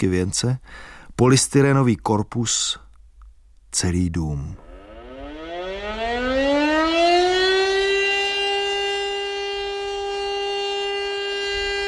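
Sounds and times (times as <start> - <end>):
speech: 0.0 - 2.8, 3.7 - 4.6
fire alarm siren from a public loudspeaker: 4.6 - 11.8.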